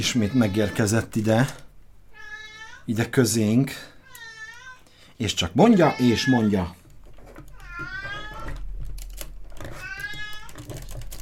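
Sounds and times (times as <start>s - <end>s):
fussy old cat meowing: 0.0s - 1.1s, 2.1s - 2.9s, 4.0s - 4.8s, 5.8s - 6.6s, 7.5s - 8.6s, 9.7s - 10.8s
speech: 0.0s - 1.7s, 2.9s - 3.9s, 5.2s - 6.8s.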